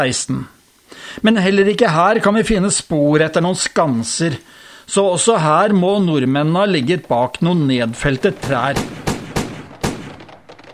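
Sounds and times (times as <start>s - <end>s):
speech: 0.0s - 9.1s
gunshots: 7.0s - 10.7s.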